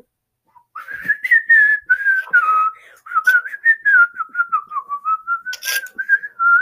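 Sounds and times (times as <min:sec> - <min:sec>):
person whistling a wandering melody: 0:00.6 - 0:06.6.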